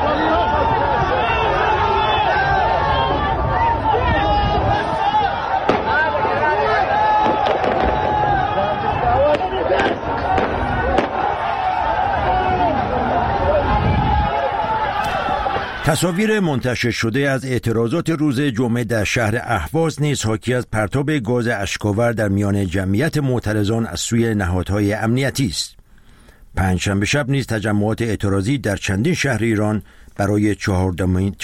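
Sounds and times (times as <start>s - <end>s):
large crowd of protesters shouting and clamoring: 0.0s - 16.6s
gunshots fired by security forces: 5.6s - 6.4s, 7.1s - 8.4s, 9.2s - 11.3s
speech: 15.9s - 25.8s, 26.6s - 31.4s.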